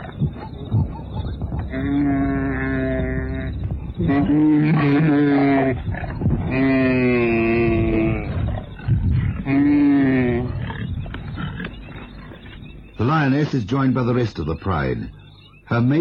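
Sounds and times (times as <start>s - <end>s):
lioness growling while attacking a wildebeest: 0.0s - 12.7s
wildebeest bellowing groans: 1.6s - 8.6s
speech: 1.8s - 2.2s, 4.2s - 4.6s, 13.3s - 16.0s.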